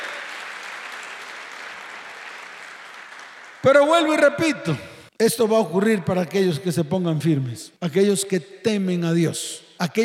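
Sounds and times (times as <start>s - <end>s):
audience applause: 0.0s - 3.8s
speech: 3.6s - 10.0s.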